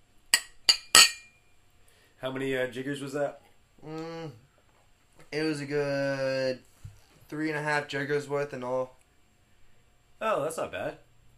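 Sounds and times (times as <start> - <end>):
glasses of Hiracha clinking in a toast: 0.4 - 1.4
speech: 2.2 - 4.4, 5.3 - 6.7, 7.3 - 9.0, 10.2 - 11.0.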